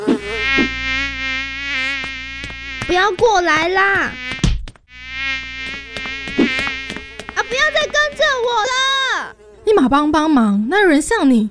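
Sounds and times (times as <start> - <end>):
swarm of flies buzzing around head: 0.0 - 8.8
speech: 2.9 - 4.3, 7.7 - 11.4.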